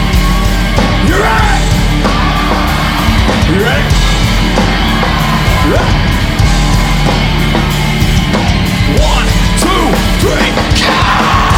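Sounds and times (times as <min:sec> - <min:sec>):
audience members at a live event screaming as loud as they can: 0:00.0 - 0:11.5.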